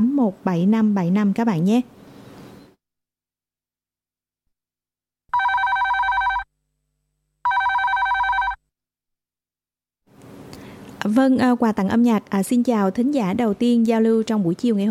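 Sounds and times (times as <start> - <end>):
speech: 0.0 - 2.0, 11.1 - 14.8
telephone ringing in a radio studio: 5.3 - 6.5, 7.4 - 8.6.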